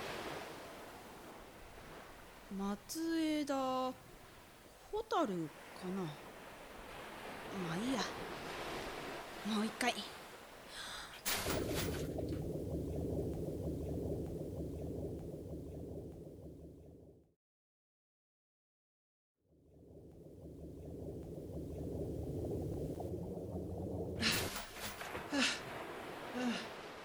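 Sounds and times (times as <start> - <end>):
underwater bubbling and churning: 0.0 - 3.0, 3.9 - 17.3, 19.5 - 27.0
speech: 2.5 - 4.1, 4.9 - 6.3, 7.5 - 8.4, 9.4 - 10.2
swimmer diving into the sea with a sharp splash: 11.2 - 12.4, 24.2 - 27.0.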